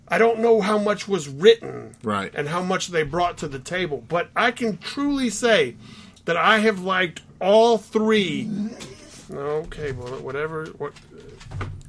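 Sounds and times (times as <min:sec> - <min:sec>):
speech: 0:00.1 - 0:11.7
dog grumbling: 0:08.4 - 0:09.3.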